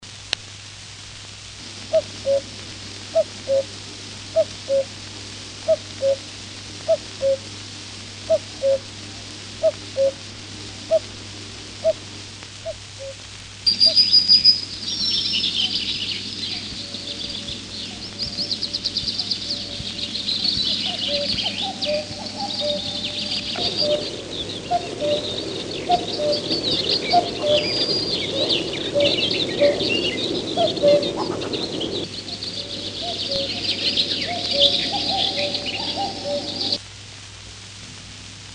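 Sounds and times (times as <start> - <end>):
cuckoo bird: 1.9 - 2.5, 3.1 - 3.7, 4.3 - 4.9, 5.6 - 6.2, 6.9 - 7.4, 8.3 - 8.9, 9.6 - 10.2, 10.9 - 11.1, 11.8 - 12.0, 12.6 - 36.8.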